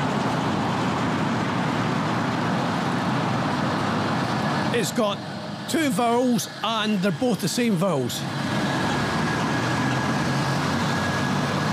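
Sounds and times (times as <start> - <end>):
bus engine drone: 0.0 - 11.7
road roar of a passing bus: 0.0 - 11.7
speech: 4.8 - 8.6.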